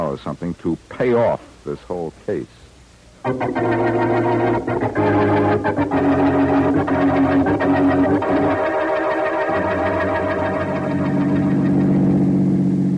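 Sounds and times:
speech: 0.1 - 2.6, 3.2 - 8.9
car engine droning as the car is driven fast toward the waterfront: 3.3 - 12.9.

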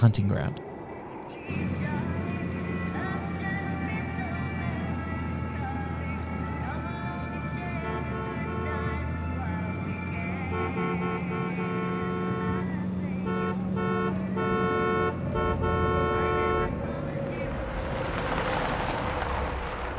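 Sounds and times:
speech: 0.0 - 0.7, 1.5 - 2.1
engine and road rumble: 0.0 - 19.9
noisy traffic: 0.0 - 19.9
car horn honking aggressively: 7.4 - 9.5, 10.1 - 17.0.

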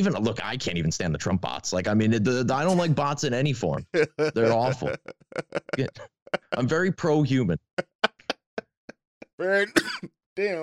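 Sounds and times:
speech: 0.0 - 7.9, 9.4 - 10.6
laughter: 3.8 - 8.6
short sharp coughs: 9.8 - 10.1.

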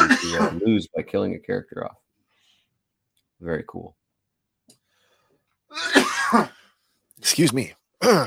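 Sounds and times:
person coughing after choking on water: 0.0 - 0.6, 5.8 - 6.6
speech: 0.3 - 2.0, 3.4 - 4.0, 5.7 - 6.6, 7.2 - 8.2.

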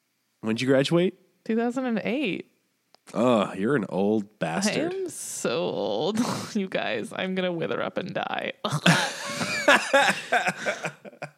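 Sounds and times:
speech: 0.4 - 2.5, 3.1 - 11.2
coughing bursts: 8.7 - 11.3
breathy laughter: 8.8 - 11.3.

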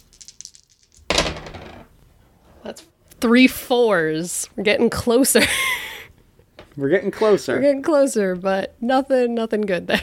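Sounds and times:
three dice rattling and clattering: 0.0 - 1.7
speech: 2.6 - 5.7, 6.8 - 10.0.

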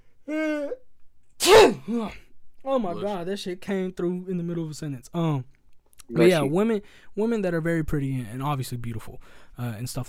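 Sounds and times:
speech: 0.3 - 0.8, 1.9 - 10.0
person sneezing: 1.4 - 2.2.

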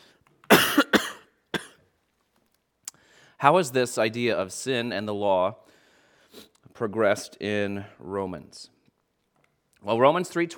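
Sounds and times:
harsh coughs from a tickle in the throat: 0.5 - 1.9
speech: 3.4 - 8.8, 9.8 - 10.5.

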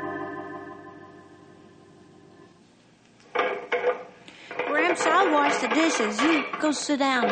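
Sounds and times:
dishes clinking and clattering in a sink while being washed: 3.3 - 7.3
people talking: 4.5 - 7.3.

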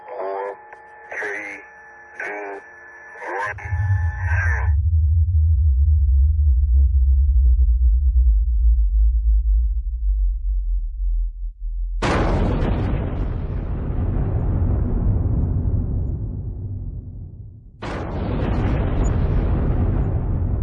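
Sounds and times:
underground nuclear bomb test explosion roaring blasts: 3.5 - 7.5, 12.0 - 20.6
low steady rumble of an underground nuclear bomb test: 3.6 - 20.6.

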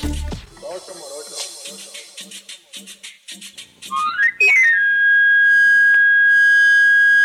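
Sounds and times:
person talking: 0.6 - 1.9
knife sharpener's wooden panpipe whistle in the streets of the capital city: 3.4 - 7.2.

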